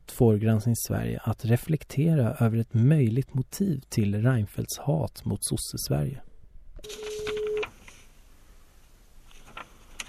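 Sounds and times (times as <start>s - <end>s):
speech: 0.2s - 7.1s
loud steady electronic telephone tone: 6.8s - 7.7s
faint telephone line hiss: 6.8s - 10.0s.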